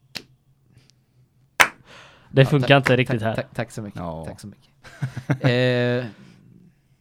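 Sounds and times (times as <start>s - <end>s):
slow hand claps: 1.6s - 1.8s
speech: 2.3s - 6.3s.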